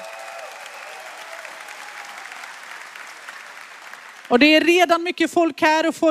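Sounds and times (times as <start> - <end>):
large audience applauding a choir: 0.0 - 4.6
speech: 4.3 - 6.1.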